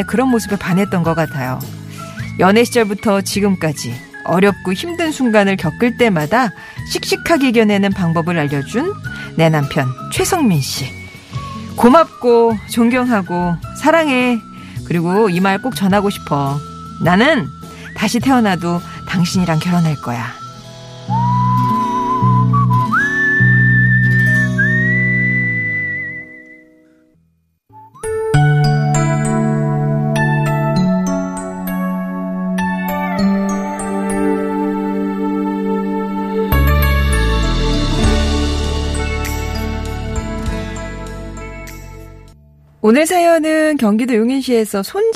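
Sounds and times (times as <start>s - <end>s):
speech: 0.0s - 1.8s, 2.4s - 11.0s, 11.8s - 20.4s, 42.8s - 45.1s
bright whistled melody in pop song: 0.0s - 27.1s, 27.7s - 42.1s
pop band playing a steady groove: 35.9s - 41.7s.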